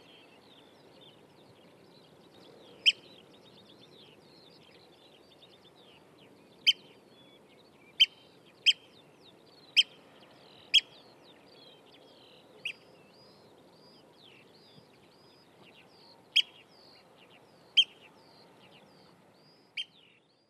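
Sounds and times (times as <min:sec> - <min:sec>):
oystercatcher calling: 0:02.8 - 0:03.1, 0:09.7 - 0:10.0, 0:10.7 - 0:11.0, 0:16.3 - 0:17.1, 0:17.7 - 0:18.1, 0:19.5 - 0:20.0.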